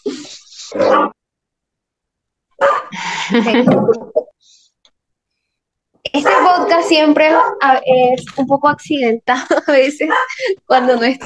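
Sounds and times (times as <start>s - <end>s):
dog barking: 0.7s - 1.2s, 2.6s - 2.9s, 6.2s - 7.8s, 10.0s - 10.4s
laughter: 3.0s - 4.2s, 9.3s - 10.7s
speech: 3.3s - 4.6s, 6.2s - 11.2s.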